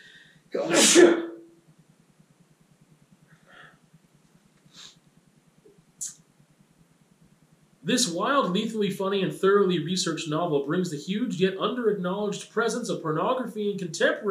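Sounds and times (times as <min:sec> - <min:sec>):
low hum: 0:00.0 - 0:14.2
speech: 0:00.6 - 0:01.3, 0:07.9 - 0:14.2
person sneezing: 0:00.6 - 0:01.4
sniffs: 0:04.7 - 0:05.0.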